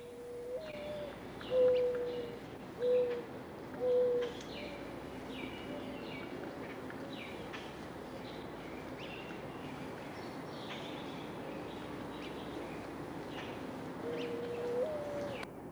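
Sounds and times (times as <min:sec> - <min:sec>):
birds chirping outdoors: 0:00.0 - 0:15.4
mourning dove cooing: 0:00.0 - 0:15.5.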